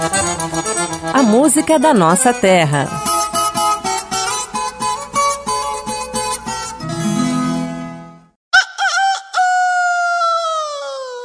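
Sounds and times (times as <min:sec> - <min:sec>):
speech: 0:00.0 - 0:00.3, 0:01.2 - 0:03.0
rhythmic strummed-sounding music: 0:00.0 - 0:08.4
rooster crowing: 0:08.6 - 0:11.0.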